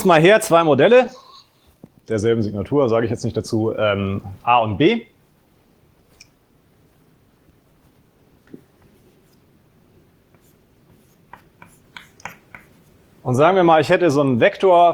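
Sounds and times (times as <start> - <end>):
speech: 0.0 - 1.2, 2.1 - 5.1, 13.2 - 14.9
writing on a board during a logic lecture: 10.3 - 13.0.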